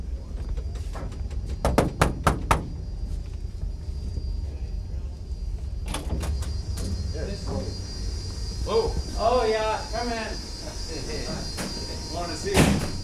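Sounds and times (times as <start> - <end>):
steady low engine rumble: 0.0 - 13.0
knocking on a door: 1.6 - 2.9.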